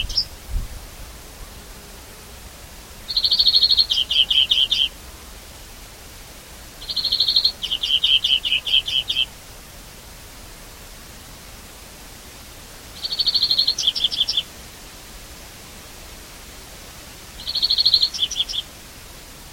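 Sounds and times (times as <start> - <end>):
low background noise: 0.0 - 19.5
European greenfinch Chloris chloris rattling trill and twittering: 3.1 - 4.9, 6.8 - 9.3, 13.0 - 14.5, 17.4 - 18.6.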